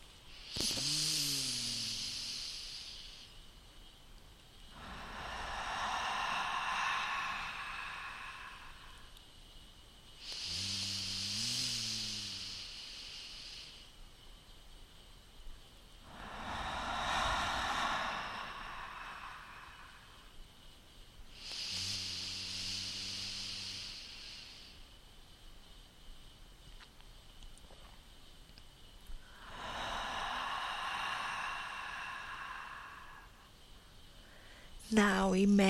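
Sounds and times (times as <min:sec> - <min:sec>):
slow deep breaths through the mouth: 0:00.3 - 0:03.5, 0:04.6 - 0:14.0, 0:16.0 - 0:25.0, 0:29.1 - 0:35.6
speech: 0:34.9 - 0:35.6.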